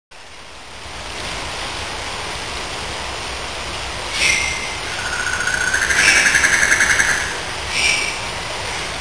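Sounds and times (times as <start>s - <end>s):
rainforest ambience: 0.1s - 8.9s.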